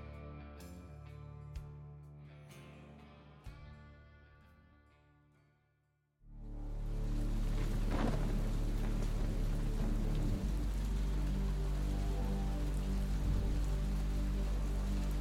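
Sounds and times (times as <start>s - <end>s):
deep continuous rumble of thunder: 6.4s - 15.2s
steady heavy rain pouring down: 6.4s - 15.2s.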